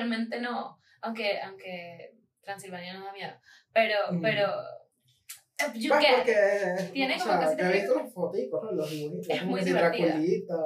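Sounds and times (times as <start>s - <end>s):
speech: 0.0s - 4.8s, 5.6s - 10.6s
brief voiced sound: 6.2s - 10.5s.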